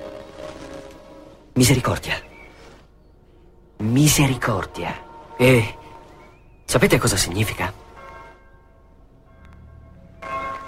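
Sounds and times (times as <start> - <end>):
speech: 1.6 - 2.3, 3.8 - 5.8, 6.7 - 7.8
church bell ringing for the Angelus at midday: 3.4 - 10.6.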